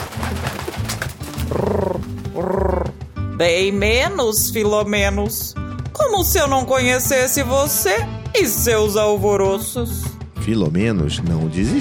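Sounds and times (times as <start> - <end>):
pigeon cooing: 0.0 - 3.1
speech: 3.4 - 11.8.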